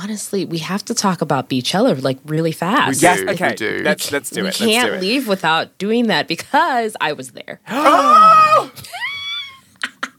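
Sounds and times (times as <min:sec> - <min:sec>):
speech: 0:00.0 - 0:08.8
excited high-pitched scream: 0:07.7 - 0:09.6.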